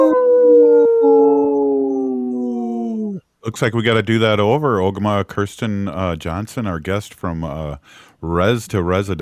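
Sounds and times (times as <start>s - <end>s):
human voices imitating a wolf howl: 0.0s - 3.2s
speech: 3.4s - 9.2s.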